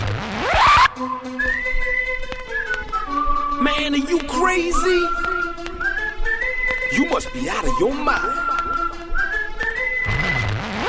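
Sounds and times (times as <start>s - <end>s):
person whistling upward-sliding and short notes: 1.0s - 10.5s
speech: 3.8s - 5.2s, 6.9s - 8.4s.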